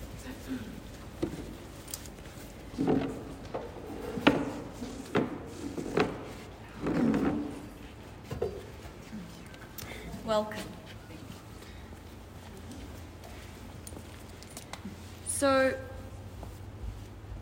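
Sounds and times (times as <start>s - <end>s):
wooden chair dragged into place with knocks and scrapes: 2.6s - 8.8s
speech: 10.3s - 10.7s.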